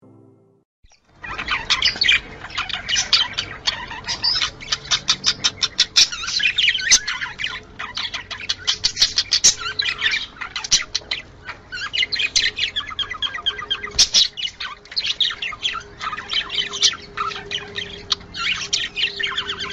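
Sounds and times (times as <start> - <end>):
budgerigar mating call: 1.0 - 19.7.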